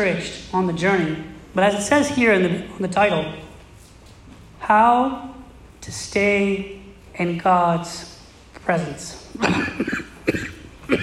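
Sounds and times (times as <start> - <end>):
speech: 0.0 - 3.5, 4.6 - 10.5
man coughing in harsh bursts: 9.3 - 11.0.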